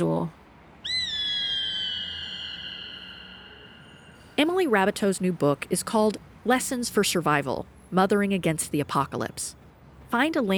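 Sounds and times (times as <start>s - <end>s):
speech: 0.0s - 0.4s, 4.4s - 10.5s
Gray Hawk drawn-out clear whistling call: 0.8s - 4.2s.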